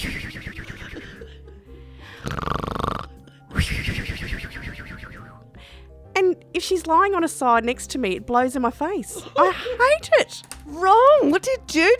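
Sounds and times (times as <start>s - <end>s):
person imitating a woman's loud snoring: 2.2s - 3.2s
speech: 6.7s - 11.9s.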